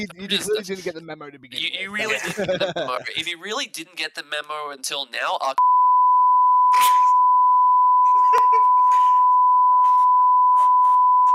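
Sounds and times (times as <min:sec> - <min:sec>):
laughter: 0:00.0 - 0:00.9, 0:01.6 - 0:03.3, 0:08.0 - 0:09.2
speech: 0:00.0 - 0:05.7
censor bleep tone: 0:05.6 - 0:11.3.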